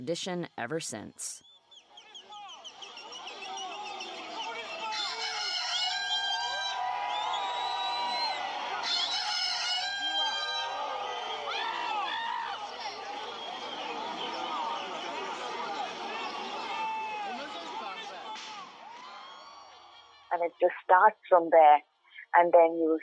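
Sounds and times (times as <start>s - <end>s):
speech: 0.0s - 1.5s, 20.5s - 23.0s
busy outdoor murmur: 1.8s - 20.9s
crowd of runners imitating a rooster's crow at marathon start: 2.0s - 20.3s.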